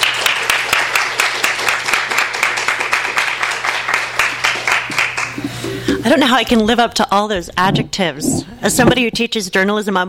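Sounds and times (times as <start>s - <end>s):
crowd applauding warmly: 0.0s - 6.0s
speech: 6.1s - 10.0s.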